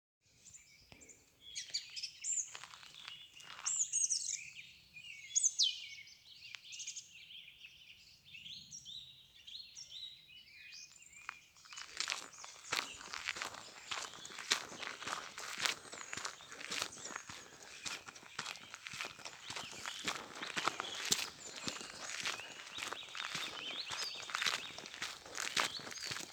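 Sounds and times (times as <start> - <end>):
birds: 0.3 - 26.3
footsteps: 11.8 - 26.3.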